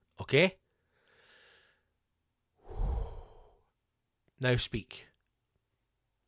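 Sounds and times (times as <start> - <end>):
speech: 0.3 - 0.6, 4.4 - 5.1
deep breath: 0.8 - 1.9, 2.6 - 3.7.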